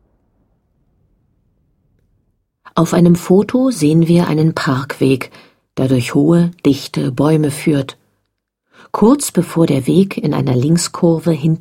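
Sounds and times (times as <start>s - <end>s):
deep heavy rumble of thunder: 0.0s - 2.7s
faint crackle: 0.0s - 2.8s
speech: 2.8s - 8.0s, 8.8s - 11.6s.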